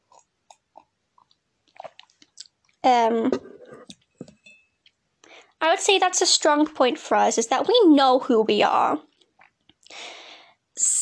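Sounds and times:
swallowing clicks: 0:00.1 - 0:02.5
sipping tea from a cup: 0:01.7 - 0:02.5
speech: 0:02.8 - 0:03.5, 0:05.7 - 0:09.1.

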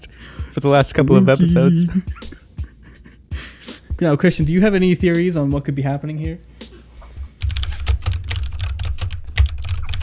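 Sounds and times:
speech: 0:00.6 - 0:02.4, 0:04.0 - 0:06.5
typing on a computer keyboard: 0:07.4 - 0:10.0.

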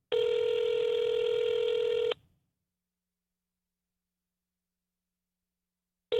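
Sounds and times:
phone ringing unanswered with electronic ring tone: 0:00.1 - 0:02.2.

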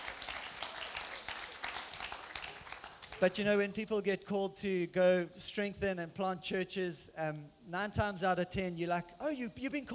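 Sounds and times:
crowd applauding: 0:00.0 - 0:03.4
speech: 0:03.2 - 0:09.9.

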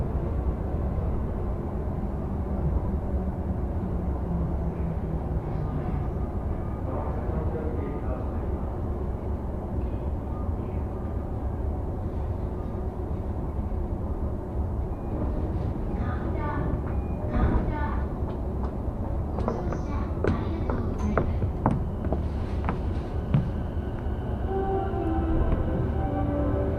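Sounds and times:
low rumble and hum inside a moving commuter train: 0:00.0 - 0:26.7.

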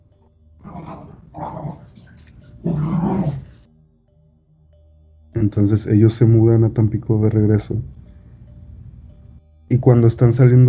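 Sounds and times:
dog barking and growling: 0:00.6 - 0:03.6
speech: 0:05.5 - 0:08.0, 0:09.7 - 0:10.6.

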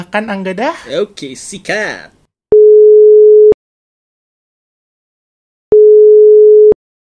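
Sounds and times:
speech: 0:00.0 - 0:02.2
telephone call ringing through with low beeps: 0:02.5 - 0:03.6, 0:05.7 - 0:06.8.

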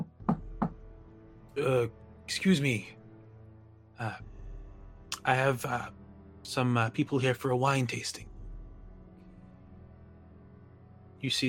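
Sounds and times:
firm knocks on a door: 0:00.0 - 0:00.8
speech: 0:01.6 - 0:03.0, 0:04.0 - 0:04.3, 0:05.2 - 0:08.3, 0:11.2 - 0:11.4.

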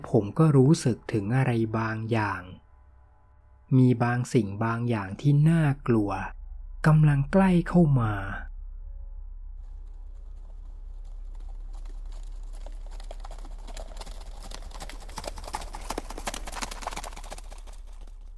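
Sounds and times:
speech: 0:00.0 - 0:02.6, 0:03.7 - 0:08.4
low rumble: 0:04.7 - 0:18.3
hoofbeats of a large animal clopping: 0:09.7 - 0:18.3.

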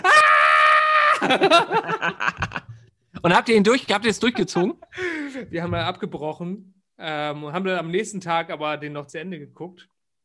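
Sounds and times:
person imitating a shocked scream: 0:00.0 - 0:01.4
laughter: 0:01.1 - 0:02.8, 0:04.3 - 0:05.5
speech: 0:01.3 - 0:02.6, 0:03.2 - 0:09.9.

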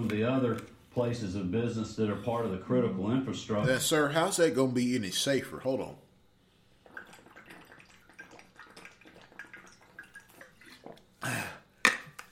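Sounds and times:
speech: 0:00.0 - 0:06.0
water trickling and splashing: 0:06.8 - 0:11.1.

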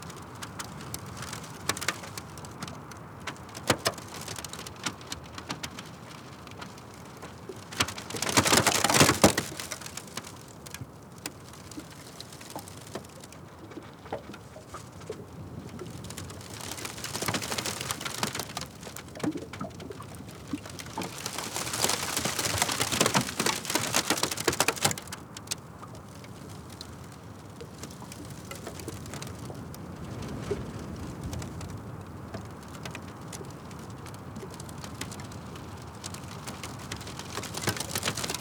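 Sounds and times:
small ticks and clicks: 0:00.0 - 0:38.4
wind gusts across a frozen lakeshore on a cold autumn day: 0:27.2 - 0:35.9.

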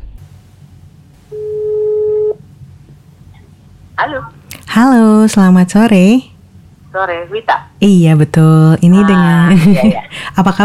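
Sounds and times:
low hum: 0:00.0 - 0:10.6
telephone ringing tone as a phone call is placed: 0:01.3 - 0:02.4
speech: 0:04.0 - 0:06.3, 0:06.9 - 0:10.6
laughter: 0:09.1 - 0:10.2.

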